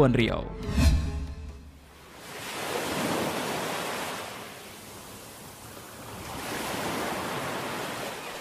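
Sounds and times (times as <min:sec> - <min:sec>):
speech: 0:00.0 - 0:00.8
ocean waves rolling on the open sea: 0:00.9 - 0:08.4.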